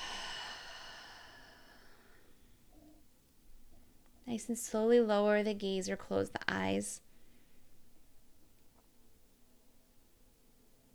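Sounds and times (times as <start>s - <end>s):
deep breathing during a relaxation exercise: 0.0s - 2.4s
speech: 4.4s - 7.0s.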